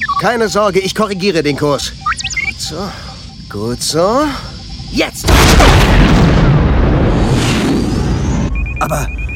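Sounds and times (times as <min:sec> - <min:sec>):
speech: 0:00.2 - 0:06.5, 0:08.8 - 0:09.2
freighter explosion after a torpedo strike: 0:05.3 - 0:08.5.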